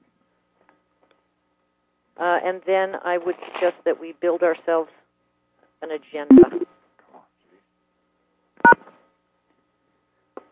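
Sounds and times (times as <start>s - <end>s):
speech: 2.2s - 5.0s, 5.8s - 6.6s
conference call electronic beep as caller rejoins: 6.3s - 6.6s.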